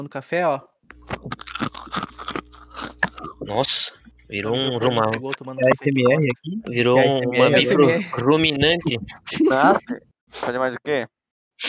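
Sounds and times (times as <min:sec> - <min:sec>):
speech: 0:00.0 - 0:01.4, 0:03.4 - 0:11.6
crunchy chewing of food: 0:00.9 - 0:05.4, 0:09.1 - 0:10.6.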